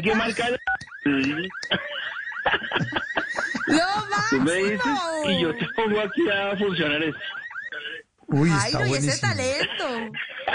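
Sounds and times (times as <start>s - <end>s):
person vocally mimicking a car alarm with whooping tones: 0.0s - 6.6s, 8.6s - 10.1s
speech: 0.0s - 10.5s
laughter: 1.6s - 8.0s, 9.2s - 10.5s.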